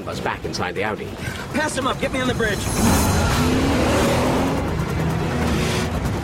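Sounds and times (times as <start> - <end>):
road noise: 0.0 - 6.2
speech: 0.1 - 4.1
Volvo car engine revving hard and accelerating: 2.6 - 6.2.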